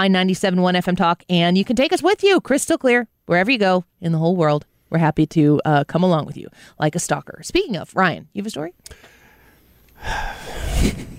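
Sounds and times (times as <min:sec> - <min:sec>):
speech: 0:00.0 - 0:09.2, 0:10.0 - 0:11.1
big gasping breath in: 0:08.9 - 0:11.1.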